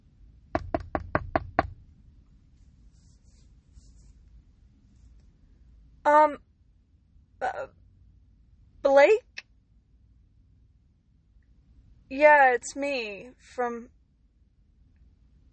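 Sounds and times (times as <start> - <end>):
knocking on a door: 0.6 - 1.8
speech: 6.1 - 6.5, 8.9 - 9.3, 12.1 - 14.0.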